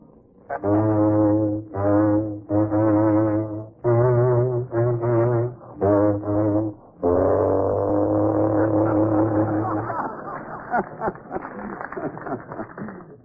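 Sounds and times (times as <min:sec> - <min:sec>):
deep blaring horn-like instrument playing a short tune: 0:00.5 - 0:09.9
laughter: 0:08.3 - 0:13.2
rough clattering crowd noise: 0:10.1 - 0:13.2.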